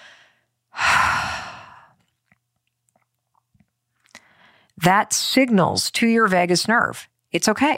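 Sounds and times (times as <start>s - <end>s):
long exhale: 0.0s - 1.9s
speech: 4.8s - 7.7s.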